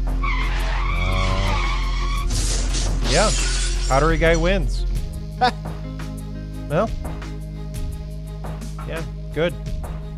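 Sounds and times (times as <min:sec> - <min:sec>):
car tires skidding: 0:00.2 - 0:02.9
speech: 0:03.1 - 0:05.7, 0:06.7 - 0:07.1, 0:09.3 - 0:09.7.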